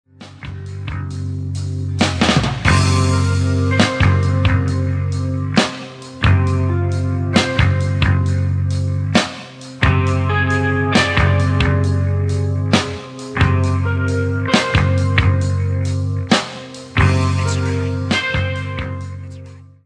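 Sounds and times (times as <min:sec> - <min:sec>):
crunch guitar tone through Mesa Boogie Quad preamp rhythm channel: 0:00.1 - 0:19.8.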